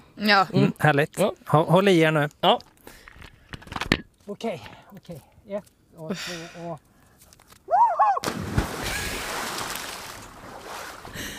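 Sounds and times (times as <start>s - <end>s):
speech: 0.2s - 2.7s, 4.3s - 6.9s
man cannonballing into the sea: 8.2s - 11.1s.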